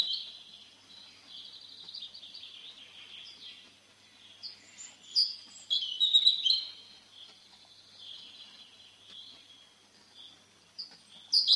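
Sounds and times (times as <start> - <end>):
European robin singing soft high warbling song perched atop a small spruce: 0.0 - 11.5.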